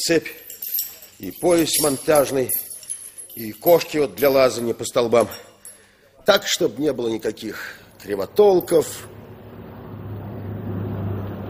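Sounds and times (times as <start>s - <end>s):
speech: 0.0s - 0.4s, 1.2s - 2.7s, 3.4s - 5.5s, 6.2s - 9.2s
bus engine rumbling, approaching at a bus station at night: 9.0s - 11.4s.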